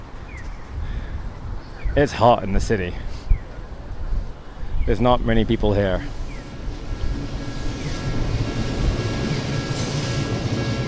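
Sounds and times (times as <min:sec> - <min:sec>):
speech: 0:02.0 - 0:03.1, 0:04.8 - 0:06.2
faint high whine: 0:04.6 - 0:10.8
long-distance passenger train rumbling past a level crossing in Tokyo: 0:05.5 - 0:10.8
train wheels rattling: 0:05.8 - 0:10.8.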